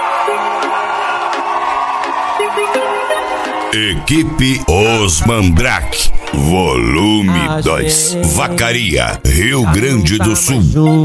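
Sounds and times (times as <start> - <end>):
large crowd shouting and cheering: 0.0 - 7.8
speech: 2.6 - 11.0.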